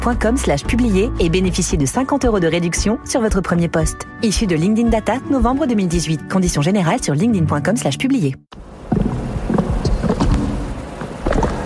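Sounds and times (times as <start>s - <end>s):
speech: 0.0s - 8.7s
biogas methanizer running: 8.5s - 11.6s.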